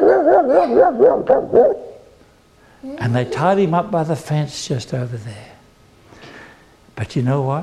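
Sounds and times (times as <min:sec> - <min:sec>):
several children imitating a ferocious dog bark: 0:00.0 - 0:02.0
speech: 0:00.5 - 0:01.8, 0:02.8 - 0:05.6, 0:07.0 - 0:07.6.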